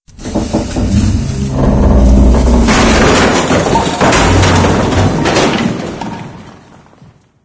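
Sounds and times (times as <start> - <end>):
debris falling: 0.2 - 7.4.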